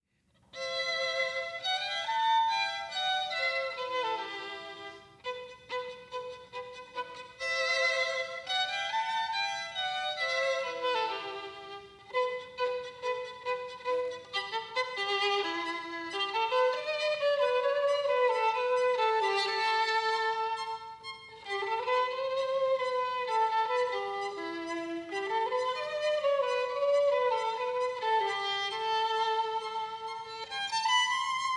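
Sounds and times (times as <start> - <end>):
two violins playing: 0.5 - 31.5.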